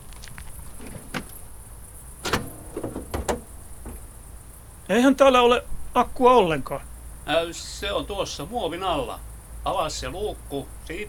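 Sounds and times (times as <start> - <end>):
door latch and handle clicking and clunking as a door is opened: 0.7 - 1.5, 2.2 - 4.2
low hum: 2.2 - 4.4
speech: 4.9 - 11.0.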